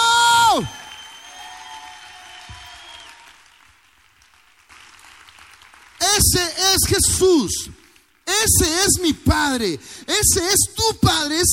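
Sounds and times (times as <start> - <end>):
congregation applauding: 0.4 - 8.6
speech: 0.6 - 0.8, 6.3 - 11.5.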